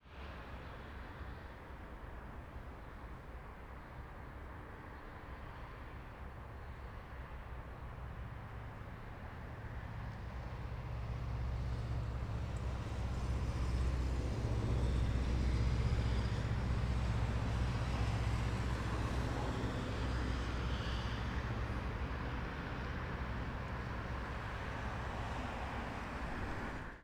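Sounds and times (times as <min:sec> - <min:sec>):
Kombi van passing on the Eixo Rodoviario: 0:08.0 - 0:27.0.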